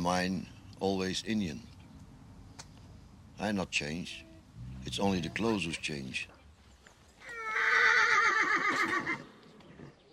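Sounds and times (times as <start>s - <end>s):
speech: 0.0s - 1.7s, 3.4s - 6.3s
horse neighing: 4.2s - 5.8s, 7.2s - 9.3s.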